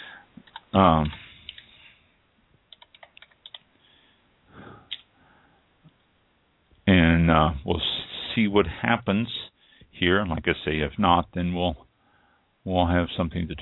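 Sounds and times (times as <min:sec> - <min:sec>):
keyboard typing as a phone number is entered: 0:00.4 - 0:01.7, 0:02.7 - 0:03.6
speech: 0:00.8 - 0:01.2, 0:07.4 - 0:09.4, 0:10.0 - 0:11.8, 0:12.6 - 0:13.6.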